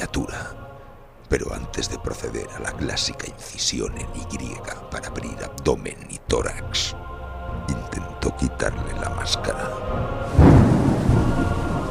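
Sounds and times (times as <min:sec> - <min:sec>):
speech: 0:01.3 - 0:07.1, 0:07.7 - 0:10.7
thunder from a violent storm: 0:10.2 - 0:11.8.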